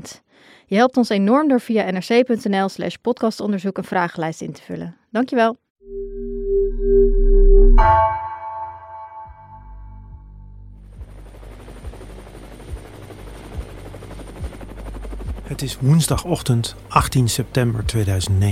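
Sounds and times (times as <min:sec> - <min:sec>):
speech: 0:00.0 - 0:08.2, 0:15.5 - 0:18.4
steady electronic alarm tone: 0:05.8 - 0:10.7
trauma helicopter taking off from a hospital in Amsterdam: 0:10.7 - 0:18.4.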